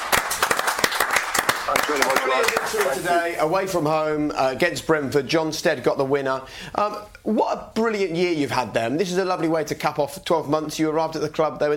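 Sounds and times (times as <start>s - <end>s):
applause: 0.0s - 3.1s
speech: 1.9s - 11.7s.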